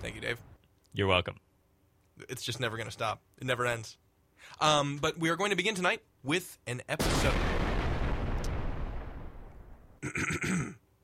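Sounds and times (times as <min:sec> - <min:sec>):
speech: 0:00.0 - 0:01.4, 0:02.2 - 0:07.6
explosion sound effect with rolling rumble: 0:07.0 - 0:10.0.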